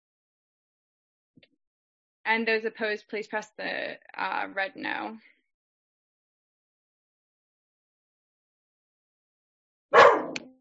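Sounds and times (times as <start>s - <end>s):
speech: 2.3s - 5.3s
dog barking: 10.0s - 10.4s.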